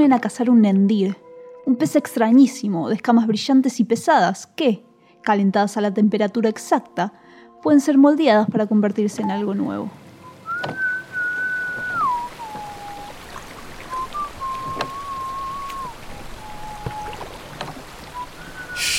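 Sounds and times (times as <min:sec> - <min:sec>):
speech: 0:00.0 - 0:10.0, 0:10.6 - 0:10.9
steady rain pattering on water: 0:09.2 - 0:18.9
person on a boat whistling a slow wavering tune: 0:10.2 - 0:13.1, 0:13.9 - 0:17.2, 0:18.2 - 0:18.9
sharp drips or knocks: 0:11.7 - 0:16.2, 0:16.8 - 0:18.9.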